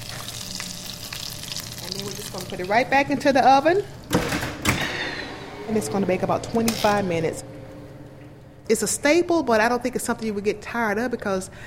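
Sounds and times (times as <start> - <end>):
batter sizzling in a hot pan: 0.0 - 2.9
speech: 1.9 - 4.4, 5.7 - 7.5, 8.7 - 11.6.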